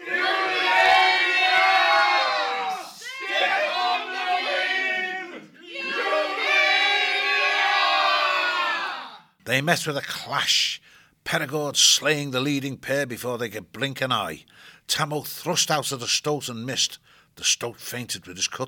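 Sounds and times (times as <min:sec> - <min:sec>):
group of voices roaring a battle cry: 0:00.0 - 0:09.2
speech: 0:09.6 - 0:18.6.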